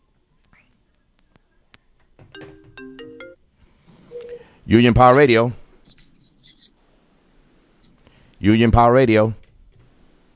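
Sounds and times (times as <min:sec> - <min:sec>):
phone ringtone of electronic tones: 0:02.3 - 0:03.4
speech: 0:04.7 - 0:06.0, 0:08.4 - 0:09.4.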